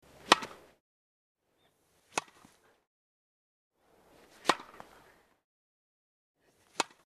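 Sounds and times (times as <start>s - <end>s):
tennis ball hits: 0.2s - 0.7s, 2.1s - 2.5s, 4.4s - 4.9s, 6.7s - 7.0s.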